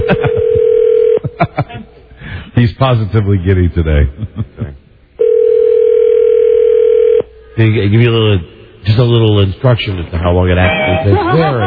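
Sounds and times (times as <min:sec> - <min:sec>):
phone ringing with a steady electronic tone: 0:00.0 - 0:01.3, 0:05.2 - 0:07.3
speech: 0:02.6 - 0:04.5, 0:07.6 - 0:11.6.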